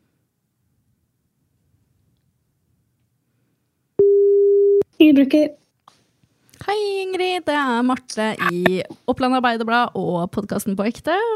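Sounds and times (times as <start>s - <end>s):
telephone ringback tone while placing a call: 4.0s - 4.8s
speech: 5.2s - 5.6s, 6.7s - 11.3s.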